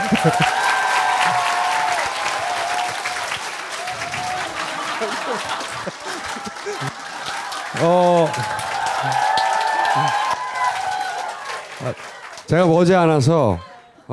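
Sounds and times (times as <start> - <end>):
faint laughter: 0.0 - 2.0, 4.6 - 10.4
audience applause: 0.0 - 12.5
speech: 0.1 - 0.6, 7.8 - 8.5, 12.5 - 14.1.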